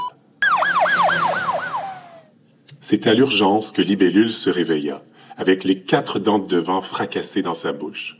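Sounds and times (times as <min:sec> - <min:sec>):
ambulance siren whooping: 0:00.0 - 0:02.3
speech: 0:02.8 - 0:08.1.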